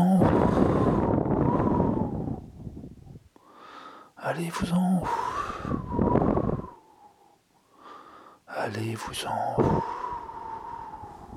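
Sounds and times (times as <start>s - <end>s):
howling storm wind gusts with a faint whistling tone: 0.2s - 3.3s, 5.3s - 6.8s, 9.6s - 11.3s
speech: 4.4s - 6.2s, 8.7s - 10.0s.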